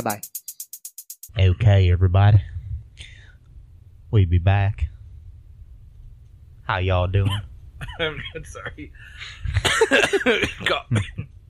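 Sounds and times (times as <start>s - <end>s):
speech: 0.0s - 0.4s, 1.4s - 2.5s, 4.1s - 4.9s, 6.7s - 11.3s
short gasps: 3.0s - 3.4s
rough coughing: 9.4s - 11.3s.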